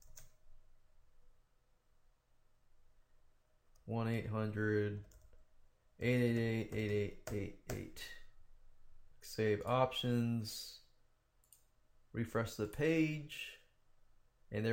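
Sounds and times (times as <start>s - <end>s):
typing hyperlink code on a computer keyboard: 0.0s - 0.4s, 5.0s - 5.4s, 6.3s - 7.9s
speech: 3.9s - 5.1s, 6.0s - 8.2s, 9.2s - 10.8s, 12.2s - 13.6s, 14.5s - 14.7s.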